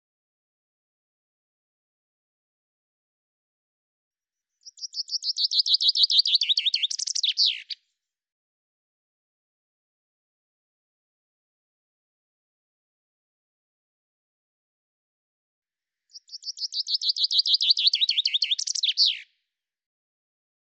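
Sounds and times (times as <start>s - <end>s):
common chaffinch song: 4.5s - 7.9s, 16.0s - 19.4s.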